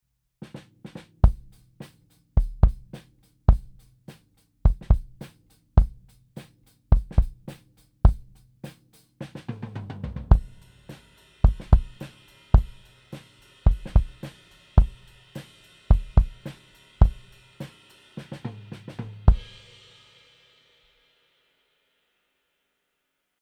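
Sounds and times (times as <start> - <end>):
kick drum: 1.2 - 1.5, 2.4 - 2.9, 3.5 - 3.8, 4.7 - 5.2, 5.8 - 6.0, 6.9 - 7.5, 8.1 - 8.4, 11.5 - 12.0, 13.7 - 14.2, 14.8 - 15.0, 17.0 - 17.2.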